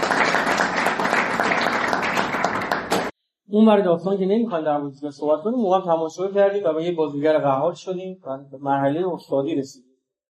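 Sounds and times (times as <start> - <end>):
audience applause: 0.0 - 3.1
speech: 3.5 - 9.9.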